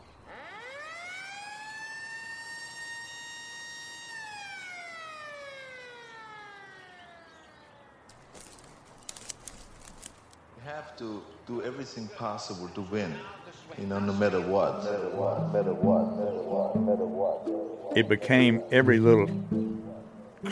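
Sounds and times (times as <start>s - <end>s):
bullhorn siren wail signaling the start of a game: 0.2s - 8.2s, 13.8s - 18.1s
faint crackling clicks: 8.1s - 10.4s
speech: 10.7s - 19.6s.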